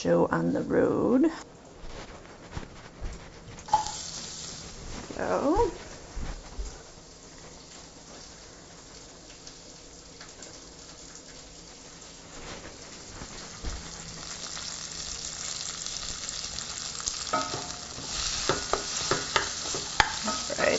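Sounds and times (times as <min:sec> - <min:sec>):
speech: 0:00.0 - 0:01.6, 0:05.2 - 0:05.8
bacon bits and onion sizzling in a pan: 0:03.3 - 0:20.7
scraping, clattering hits from stirring in a pan: 0:17.2 - 0:20.7.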